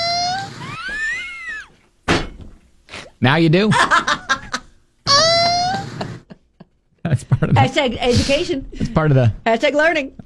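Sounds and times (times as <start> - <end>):
small box turtle squealing while mating: 0.0 - 1.8, 5.1 - 6.0
speech: 3.2 - 4.2, 7.2 - 10.2.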